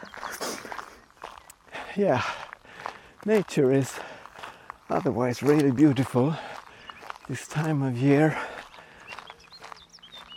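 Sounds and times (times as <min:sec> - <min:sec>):
several birds chirping and whistling outdoors: 0:00.0 - 0:01.9, 0:05.8 - 0:10.3
soft outdoor hum: 0:00.0 - 0:10.3
speech: 0:02.0 - 0:02.4, 0:03.2 - 0:04.1, 0:04.9 - 0:06.5, 0:07.3 - 0:08.5.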